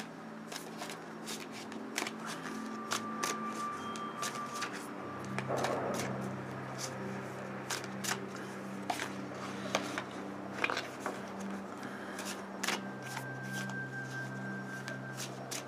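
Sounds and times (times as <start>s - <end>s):
deck of oracle cards being shuffled: 0.0s - 11.5s, 12.2s - 15.6s
faint steady hum: 0.0s - 15.6s.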